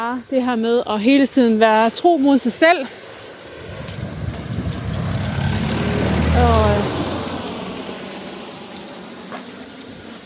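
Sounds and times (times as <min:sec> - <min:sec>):
speech: 0:00.0 - 0:03.0
vehicle engine rumbling: 0:03.0 - 0:10.2.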